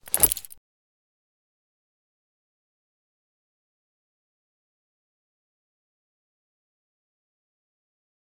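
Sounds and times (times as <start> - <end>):
grenade thrown: 0.0 - 0.6.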